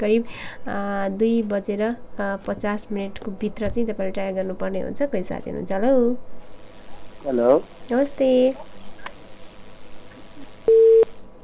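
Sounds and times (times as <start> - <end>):
speech: 0.0 - 6.4, 7.2 - 8.8
faint phone line hiss: 6.3 - 11.3
busy-signal beep on a phone line after a caller was cut off: 10.7 - 11.1.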